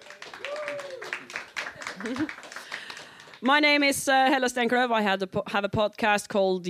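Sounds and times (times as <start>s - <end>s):
people whooping and cheering: 0.0s - 2.6s
audience clapping: 0.0s - 4.0s
speech: 2.0s - 2.5s, 3.4s - 6.6s.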